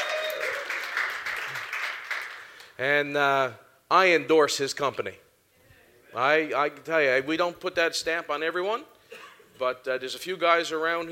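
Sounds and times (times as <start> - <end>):
church crowd applauding: 0.0 - 2.8
speech: 2.8 - 5.2, 6.1 - 9.0, 9.6 - 11.1.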